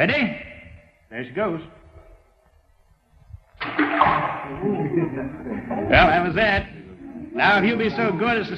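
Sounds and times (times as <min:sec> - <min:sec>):
speech: 0:00.0 - 0:00.5, 0:01.1 - 0:01.8, 0:04.0 - 0:06.8, 0:07.4 - 0:08.5
rock dropped into a deep well splashing with water wash: 0:03.6 - 0:04.8
laughter: 0:03.7 - 0:08.2.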